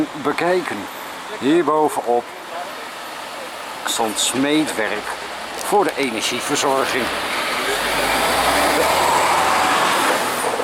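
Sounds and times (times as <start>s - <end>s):
speech: 0.0s - 2.4s, 3.8s - 7.5s
train passing with rumble and hiss: 0.0s - 10.6s.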